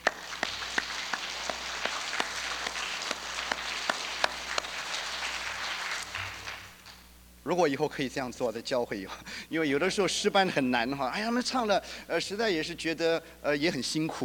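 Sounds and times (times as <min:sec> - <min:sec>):
audience applauding with raised hands: 0:00.0 - 0:07.1
speech: 0:07.5 - 0:14.2.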